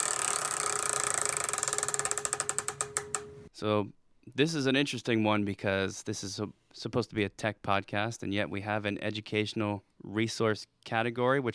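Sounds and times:
spun game wheel ratchet clicking: 0.0s - 3.3s
speech: 3.6s - 11.5s.

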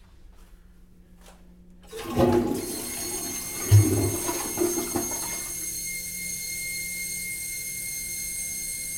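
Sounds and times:
hotel-room toilet in Orlando flushing with a gurgling rush of water: 1.8s - 5.9s
high-pitched whining hum of hotel toilet tank refilling: 1.8s - 8.9s.

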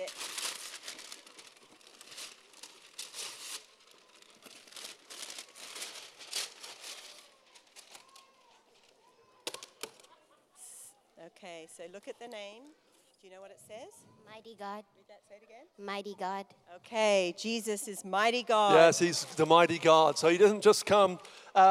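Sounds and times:
gift wrapping paper being ripped open: 0.0s - 9.0s
speech: 11.3s - 21.6s.

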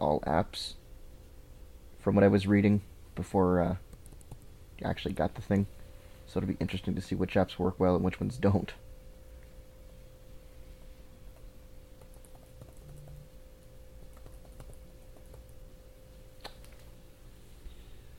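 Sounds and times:
speech: 0.0s - 0.8s, 2.0s - 3.8s, 4.8s - 8.8s
steady low electrical hum: 0.0s - 18.1s
typing on a laptop keyboard: 3.9s - 4.4s, 12.0s - 13.2s, 14.1s - 15.6s.

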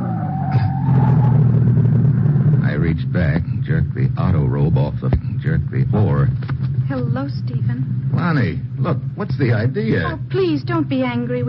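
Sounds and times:
car tires squealing under hard braking: 0.0s - 3.3s
car engine rumble: 0.0s - 11.4s
speech: 9.3s - 11.4s.

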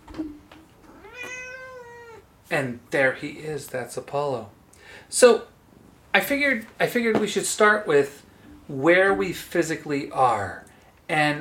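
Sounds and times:
male kitten meowing in Portland, Maine: 0.8s - 2.2s
speech: 2.5s - 5.5s, 6.1s - 11.4s.

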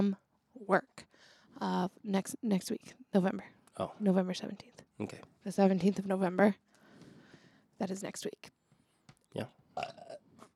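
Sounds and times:
speech: 0.0s - 6.7s, 7.8s - 8.6s, 9.3s - 10.1s
loud gurgling burp: 9.4s - 10.5s.

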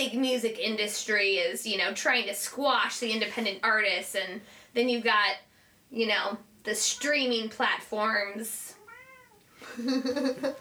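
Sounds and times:
speech: 0.0s - 8.8s, 9.6s - 10.5s
pet cat meowing: 8.7s - 9.5s
laughter: 9.6s - 10.5s.

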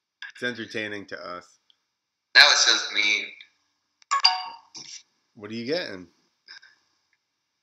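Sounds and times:
speech: 0.4s - 1.6s, 2.4s - 3.4s, 4.8s - 6.2s
computer incoming call electronic ringtone: 4.1s - 4.7s.

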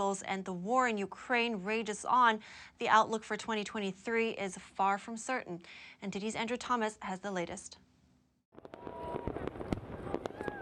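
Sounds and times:
speech: 0.0s - 7.8s
fireworks cracking and popping: 8.5s - 10.5s.

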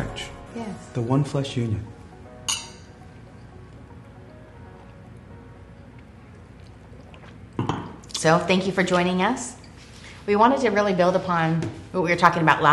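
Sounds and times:
speech: 0.2s - 2.0s, 8.2s - 9.6s, 10.3s - 12.7s
glasses clinking in a toast to marriage: 2.5s - 3.0s.

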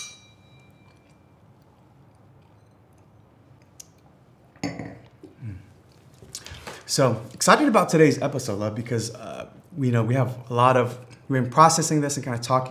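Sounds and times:
glasses clinking in a toast: 0.0s - 1.4s, 4.6s - 5.0s
speech: 6.9s - 12.6s.

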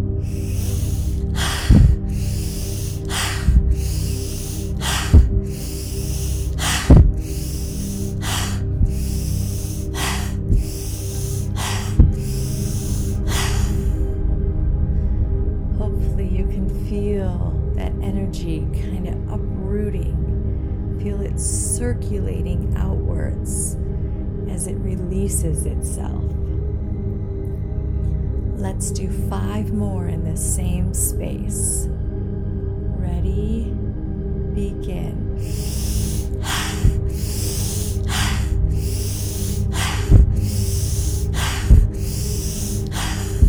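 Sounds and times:
deep breaths in through the nose and out through the mouth: 0.0s - 15.7s, 35.2s - 43.4s
low steady drone: 0.0s - 43.4s.

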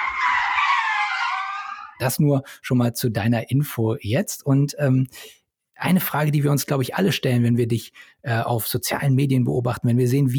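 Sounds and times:
loud high-pitched screech sound effect with wavering tone: 0.0s - 2.0s
speech: 2.0s - 10.3s.

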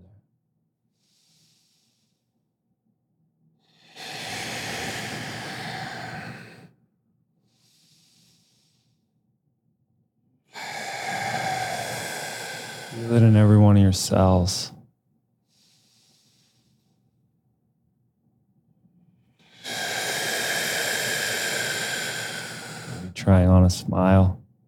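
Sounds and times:
slow deep breathing in and out through the mouth during a guided relaxation exercise: 0.9s - 2.4s, 3.6s - 9.2s, 10.5s - 14.8s, 15.4s - 17.3s, 19.3s - 24.4s
speech: 13.0s - 14.8s, 23.3s - 24.4s.

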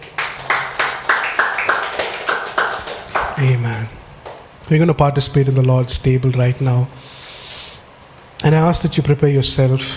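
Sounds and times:
crowd clapping together in a steady rhythm: 0.0s - 3.6s, 4.2s - 4.5s
speech: 3.4s - 4.0s, 4.7s - 7.2s, 8.4s - 9.9s.

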